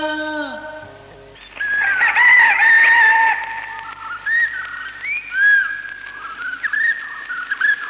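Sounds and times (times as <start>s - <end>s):
bright warbling bird-like calls: 1.4s - 7.8s
rooster crowing: 1.6s - 4.4s.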